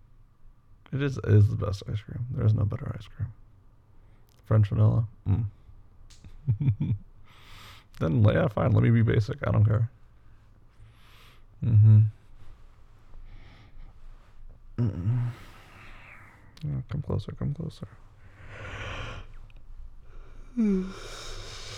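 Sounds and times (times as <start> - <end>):
speech: 0.9 - 3.4, 4.5 - 5.6, 6.2 - 7.1, 8.0 - 10.0, 11.6 - 12.2, 14.8 - 15.5, 16.6 - 18.0, 20.6 - 21.3
person yawning: 14.8 - 15.7, 20.2 - 21.7.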